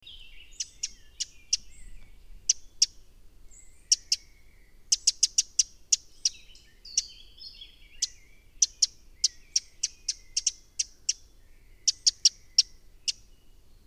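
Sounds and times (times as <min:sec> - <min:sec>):
Eurasian wren Troglodytes troglodytes calling: 0:00.0 - 0:13.6.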